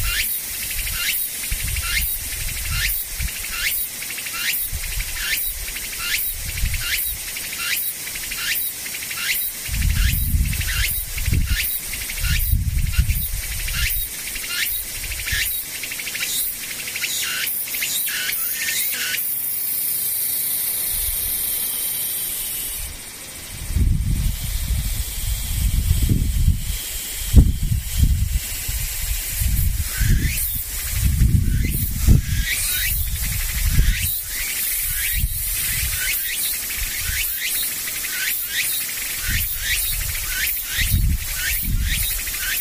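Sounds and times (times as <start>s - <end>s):
low rumbling wind gusts on the microphone: 0.0s - 3.6s, 4.7s - 7.3s, 9.6s - 14.1s, 14.8s - 15.5s, 22.8s - 37.3s, 39.2s - 42.5s
insects calling in quick regular pulses: 0.0s - 42.5s
steady hiss: 0.0s - 42.5s.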